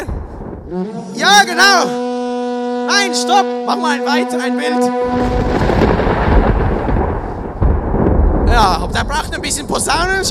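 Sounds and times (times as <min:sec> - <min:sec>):
thunder rumbling with crackling texture: 0:00.0 - 0:02.0, 0:03.8 - 0:10.2
speech: 0:00.7 - 0:02.1, 0:02.9 - 0:05.7, 0:08.6 - 0:10.2.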